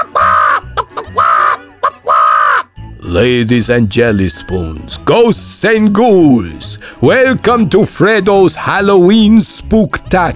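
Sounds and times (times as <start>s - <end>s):
parrot squawking: 0.0s - 2.8s
speech: 3.1s - 10.3s.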